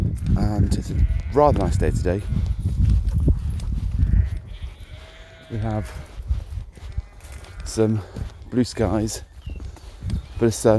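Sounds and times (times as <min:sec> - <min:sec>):
sheep and lambs bleating: 0:00.0 - 0:02.4, 0:03.8 - 0:09.0
light breeze: 0:00.0 - 0:10.7
speech: 0:00.5 - 0:02.8, 0:05.5 - 0:06.1, 0:07.7 - 0:09.3, 0:10.4 - 0:10.7.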